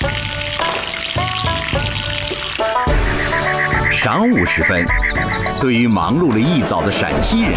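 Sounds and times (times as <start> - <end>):
dough sticks deep-frying in hot oil at a Beijing breakfast shop: 0.0 - 3.0
speech: 4.0 - 7.5.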